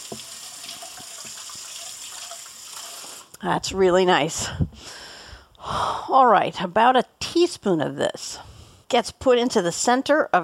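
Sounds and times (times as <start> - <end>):
water running from a tap while washing hands: 0.0 - 3.2
speech: 3.4 - 5.0, 5.6 - 10.4.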